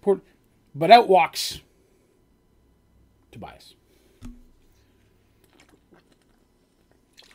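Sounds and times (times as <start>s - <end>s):
speech: 0.0s - 1.6s, 3.3s - 3.8s
person sipping a drink: 4.2s - 7.3s.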